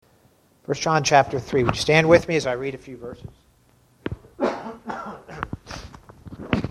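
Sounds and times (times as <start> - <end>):
speech: 0.7 - 3.4
people coughing in a room: 4.4 - 5.6.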